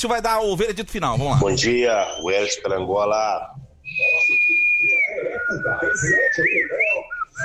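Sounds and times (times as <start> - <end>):
speech: 0.0 - 7.4
person whistling a bird-like tone: 3.8 - 7.4.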